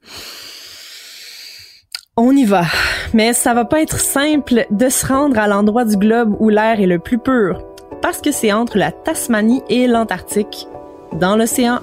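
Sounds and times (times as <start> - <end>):
deep inhalation: 0.0 - 1.9
speech: 2.2 - 11.8.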